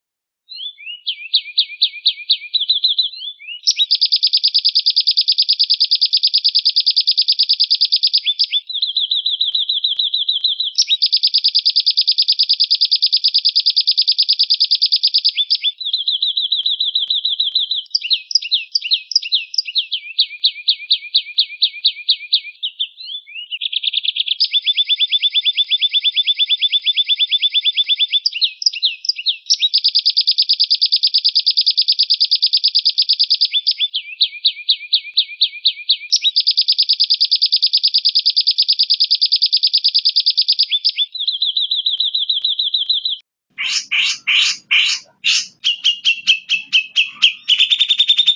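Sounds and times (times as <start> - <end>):
lovebird long chattering in training: 0.5 - 48.3.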